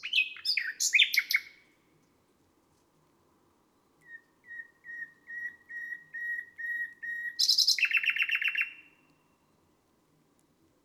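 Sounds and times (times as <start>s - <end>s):
common nightingale singing: 0.0s - 1.6s, 4.0s - 9.6s.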